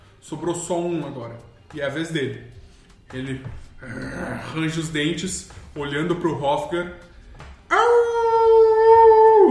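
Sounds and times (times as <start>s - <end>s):
speech: 0.3s - 7.1s
wolf howling: 7.7s - 9.4s.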